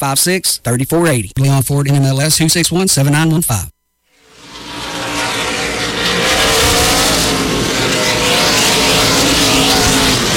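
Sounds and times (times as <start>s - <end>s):
speech: 0.0s - 3.8s
NASCAR Craftsman Truck Series truck engines roaring at a raceway at night: 4.2s - 10.3s.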